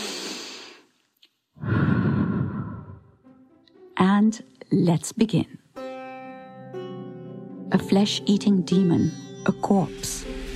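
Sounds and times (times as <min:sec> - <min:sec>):
deep breaths before a walking fitness session: 0:00.0 - 0:01.0, 0:01.6 - 0:03.2
speech: 0:04.2 - 0:05.6, 0:07.7 - 0:10.3.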